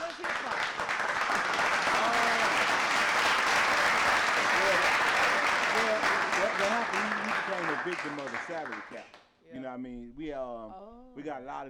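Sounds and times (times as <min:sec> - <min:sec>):
audience applauding: 0:00.0 - 0:09.2
speech: 0:07.9 - 0:11.6.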